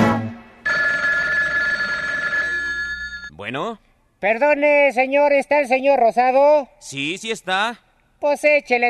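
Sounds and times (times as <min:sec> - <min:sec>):
telephone ringing at midnight: 0:00.6 - 0:03.3
speech: 0:03.5 - 0:08.8.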